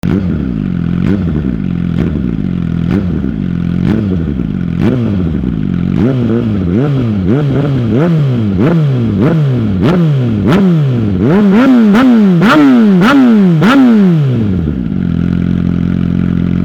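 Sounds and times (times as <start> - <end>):
Suzuki GSX-R1000 motorcycle exhaust with original silencer: 0.0 - 16.6.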